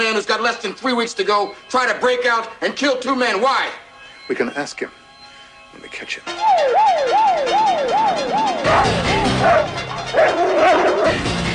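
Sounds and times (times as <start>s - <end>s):
speech: 0.0s - 5.0s, 5.7s - 11.4s
siren yelping in rising-and-falling sweeps: 6.3s - 11.2s
guard dogs barking on a riverbank outside a prison: 6.4s - 11.3s.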